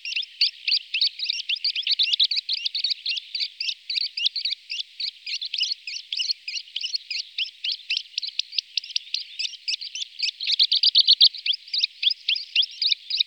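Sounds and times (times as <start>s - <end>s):
Calandra lark song of rapid sharp chirping notes: 0.0s - 13.2s.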